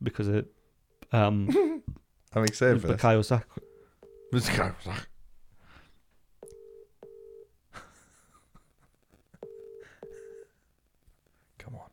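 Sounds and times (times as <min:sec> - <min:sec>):
speech: 0:00.0 - 0:03.6, 0:04.3 - 0:05.1
phone ringing through the earpiece in double pulses: 0:03.6 - 0:04.5, 0:06.4 - 0:07.5, 0:09.4 - 0:10.5.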